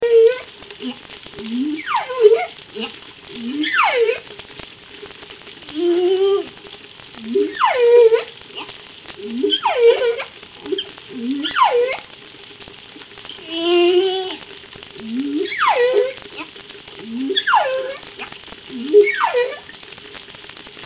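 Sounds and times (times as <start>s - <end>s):
humpback whale song off La Réunion: 0.0s - 4.4s, 5.7s - 12.2s, 15.0s - 19.8s
steady crackling: 0.0s - 20.8s.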